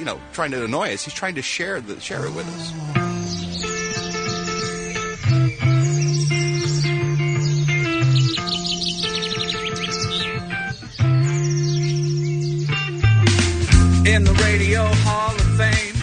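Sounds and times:
speech: 0:00.0 - 0:03.4, 0:14.1 - 0:15.9
birds chirping and tweeting: 0:00.0 - 0:15.6
steady low humming drone: 0:02.2 - 0:07.3.

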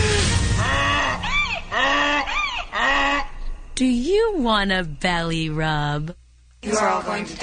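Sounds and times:
donkey braying hee-haw: 0:00.6 - 0:03.5
speech: 0:03.8 - 0:07.4.

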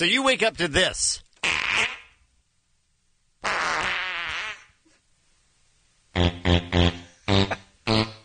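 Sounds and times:
speech: 0:00.0 - 0:01.2
loud comic cartoon fart sounds: 0:01.4 - 0:02.2, 0:03.4 - 0:04.8, 0:06.1 - 0:08.2.

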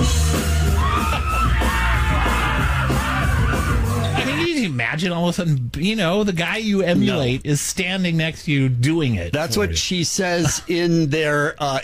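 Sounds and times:
band playing loud live music in a pub: 0:00.0 - 0:04.4
packed pub crowd yelling and whooping: 0:00.3 - 0:04.4
speech: 0:05.0 - 0:11.8.

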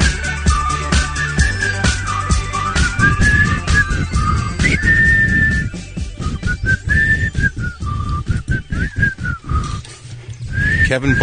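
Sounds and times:
person whistling a wandering melody: 0:00.0 - 0:09.8, 0:10.5 - 0:11.2
busy rumbling background: 0:02.8 - 0:11.0
speech: 0:10.9 - 0:11.2.

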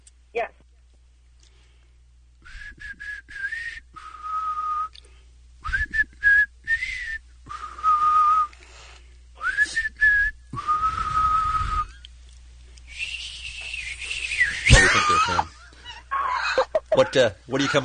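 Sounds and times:
person whistling a tune: 0:02.5 - 0:05.0, 0:05.6 - 0:08.6, 0:09.4 - 0:12.0, 0:12.9 - 0:15.1
laughter: 0:14.6 - 0:17.8.

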